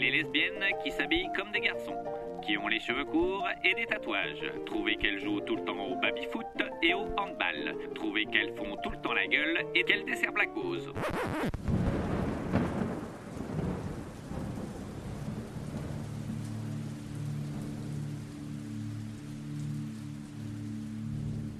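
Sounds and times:
heavy rain hiss: 0.0s - 10.2s, 11.4s - 21.5s
speech: 0.2s - 11.8s
loud rolling crack of thunder: 11.5s - 18.2s.

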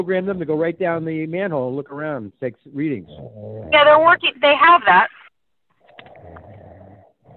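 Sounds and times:
speech: 0.0s - 5.2s
person snoring: 6.0s - 7.3s.

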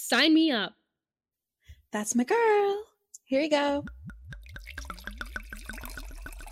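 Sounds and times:
speech: 0.0s - 0.8s, 1.9s - 4.0s
wine pouring from a bottle into a glass: 3.9s - 6.5s.

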